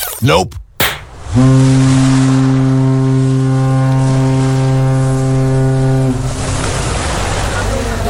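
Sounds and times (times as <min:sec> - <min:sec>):
speech: 0:00.3 - 0:00.6, 0:01.3 - 0:01.8
passenger ship engine rumble: 0:01.1 - 0:08.0
deep ship horn blaring: 0:01.3 - 0:06.4.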